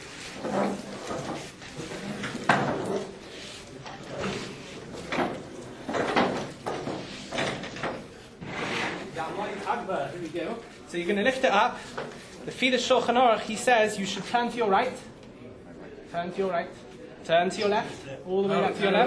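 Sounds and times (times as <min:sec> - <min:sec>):
chair being shifted around: 0:00.2 - 0:09.2
speech: 0:10.2 - 0:15.1, 0:16.1 - 0:19.0.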